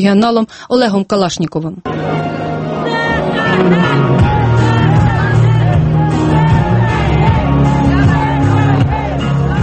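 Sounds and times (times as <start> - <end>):
speech: 0.0 - 2.5, 3.6 - 4.1
dense outdoor crowd shouting at a street protest: 2.1 - 9.6
whoops from a street protest crowd: 3.8 - 9.2.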